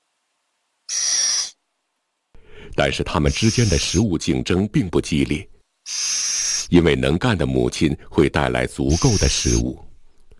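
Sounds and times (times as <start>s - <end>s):
little owl chick harsh hissing call: 0.9s - 1.6s, 3.2s - 4.0s, 5.8s - 6.7s, 8.9s - 9.7s
speech: 2.7s - 9.9s.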